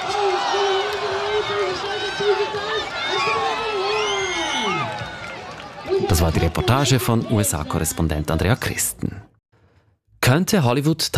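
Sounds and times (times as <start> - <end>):
crowd cheering at a pig race: 0.0 - 8.7
long descending whoop: 3.0 - 5.0
speech: 6.2 - 9.4, 10.3 - 11.1.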